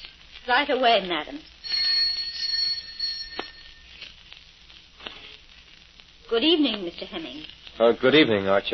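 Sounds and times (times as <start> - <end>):
hiss: 0.0 - 8.7
speech: 0.5 - 1.5, 6.3 - 8.7
doorbell ringing: 1.6 - 3.9.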